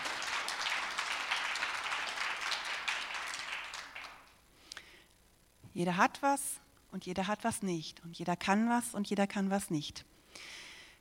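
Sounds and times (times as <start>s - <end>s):
audience in a room applauding: 0.0s - 4.4s
speech: 5.8s - 10.6s.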